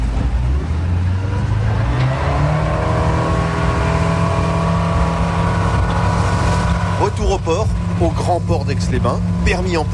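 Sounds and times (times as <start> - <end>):
wind noise: 0.0 - 7.9
motorboat engine accelerating on a lake near Aix-les-Bains: 0.0 - 9.9
speech: 7.5 - 9.9.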